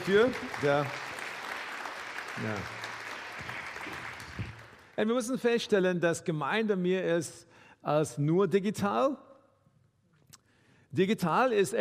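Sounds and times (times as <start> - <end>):
speech: 0.0 - 1.1, 2.4 - 2.8, 5.0 - 9.3, 10.9 - 11.7
audience applause: 0.0 - 5.0.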